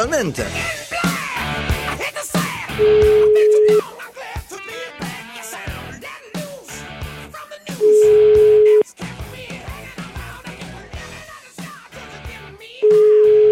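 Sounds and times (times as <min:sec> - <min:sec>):
ringback tones of an outgoing telephone call: 0:02.8 - 0:03.8, 0:07.8 - 0:08.8, 0:12.9 - 0:13.5.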